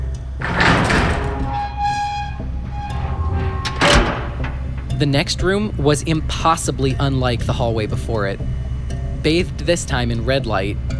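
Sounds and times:
large heavy rusted metal door creaking open: 0:00.4 - 0:05.1
deep scraping thuds of a heavy metal door: 0:00.5 - 0:05.1
speech: 0:05.0 - 0:08.6, 0:09.2 - 0:10.9.

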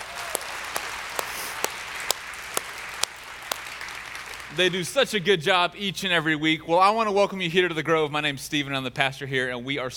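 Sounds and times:
sharp individual claps: 0:00.0 - 0:04.6
audience applauding the band: 0:00.0 - 0:04.8
speech: 0:04.6 - 0:09.9.

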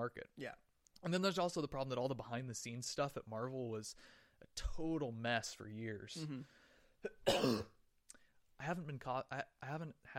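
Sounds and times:
speech: 0:00.0 - 0:07.8, 0:08.6 - 0:10.1
person coughing harsh and raspy: 0:07.0 - 0:07.8.

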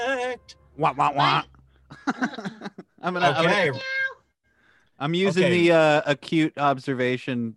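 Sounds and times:
speech: 0:00.2 - 0:01.5, 0:02.1 - 0:04.0, 0:05.0 - 0:07.5
laughter: 0:01.9 - 0:03.4
person imitating a cat meow as a trivia-game buzzer sound effect: 0:03.2 - 0:04.2.

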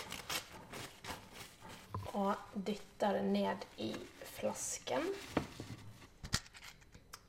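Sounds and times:
paper rustling and crinkling as it is handled and crumpled: 0:00.0 - 0:02.3, 0:03.8 - 0:06.2
speech: 0:02.2 - 0:05.4.

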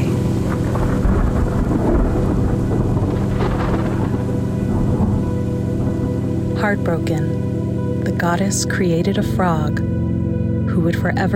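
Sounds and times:
strong wind in a storm: 0:00.0 - 0:08.2
thunder rumbling in a storm: 0:00.0 - 0:08.6
rain in a storm: 0:00.0 - 0:08.7
speech: 0:06.7 - 0:07.5, 0:08.2 - 0:09.9, 0:10.8 - 0:11.3.

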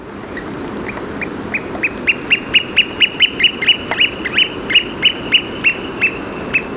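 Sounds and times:
oystercatcher piping: 0:00.4 - 0:06.7.

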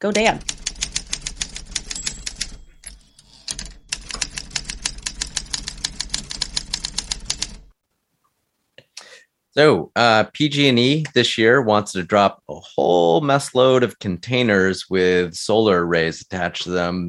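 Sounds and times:
speech: 0:00.0 - 0:00.5, 0:09.6 - 0:17.0
typewriter keystrokes: 0:00.0 - 0:07.7.

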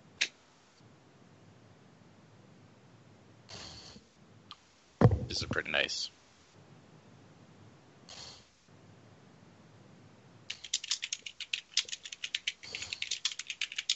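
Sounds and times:
speech: 0:05.3 - 0:06.2
typing on computer keys: 0:10.5 - 0:13.9.

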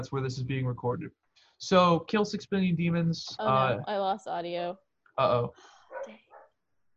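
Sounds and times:
speech: 0:00.0 - 0:06.2
dog barking excitedly: 0:05.9 - 0:06.5.

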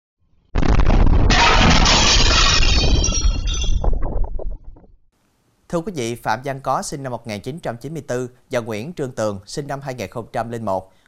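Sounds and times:
bomb blast: 0:00.5 - 0:03.4
glass door shattering: 0:00.6 - 0:04.2
falling glass shards clinking and tinkling: 0:01.3 - 0:03.8
speech: 0:05.7 - 0:11.0.

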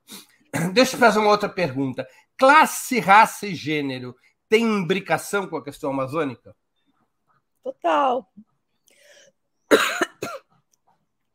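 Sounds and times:
loud coughs: 0:00.5 - 0:01.1, 0:09.7 - 0:10.6
speech: 0:00.7 - 0:06.6, 0:07.6 - 0:08.5, 0:09.7 - 0:10.0
faint breathy lead-in: 0:08.8 - 0:09.5.

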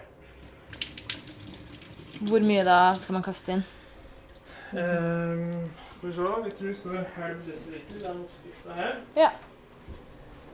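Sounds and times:
water splashed into a hot oven: 0:00.5 - 0:03.4
speech: 0:02.2 - 0:03.8, 0:04.7 - 0:09.5.

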